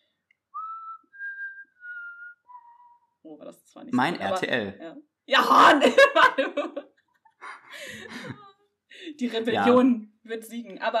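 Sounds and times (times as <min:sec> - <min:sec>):
person whistling a short melody: 0:00.5 - 0:03.1
speech: 0:03.2 - 0:06.9, 0:09.2 - 0:10.9
laughter: 0:05.4 - 0:08.5.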